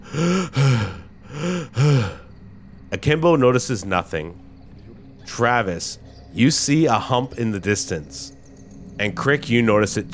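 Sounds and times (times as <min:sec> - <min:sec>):
person imitating heavy raspy breathing: 0:00.0 - 0:02.3
speech: 0:00.1 - 0:00.6, 0:03.0 - 0:04.5, 0:05.4 - 0:08.4, 0:09.0 - 0:10.1.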